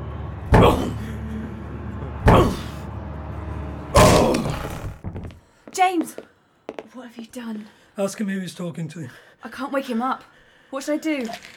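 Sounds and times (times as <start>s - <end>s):
speech: 0.5s - 1.0s, 5.8s - 6.3s, 7.0s - 11.5s
door being kicked to break it down: 4.0s - 5.4s.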